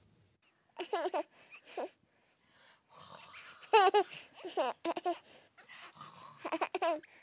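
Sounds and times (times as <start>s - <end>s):
nine-month-old baby girl babbling and giggling during a diaper change: 0.8s - 2.0s, 3.6s - 5.3s, 6.4s - 7.1s
speech: 1.0s - 1.9s, 3.9s - 5.4s.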